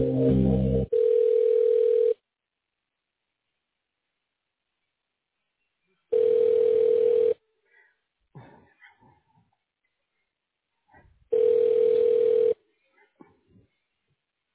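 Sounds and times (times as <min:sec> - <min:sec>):
telephone ringback tone during a call transfer: 0:00.9 - 0:02.2, 0:06.1 - 0:07.4, 0:11.4 - 0:12.6.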